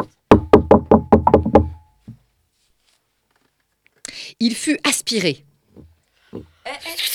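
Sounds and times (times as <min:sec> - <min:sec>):
loud resonant knocking on a door: 0:00.0 - 0:02.2
speech: 0:04.4 - 0:05.5.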